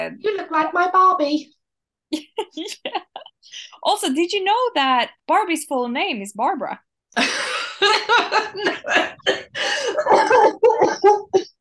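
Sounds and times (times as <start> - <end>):
speech: 0.0 - 11.5
laughter: 2.2 - 3.4, 7.2 - 11.5
person coughing: 8.4 - 11.6.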